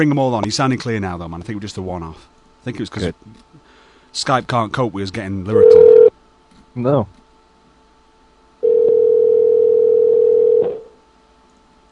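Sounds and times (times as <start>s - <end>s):
speech: 0.0s - 6.0s, 6.8s - 7.2s
telephone dial tone while conferencing callers into a call: 5.6s - 6.1s, 8.6s - 10.9s.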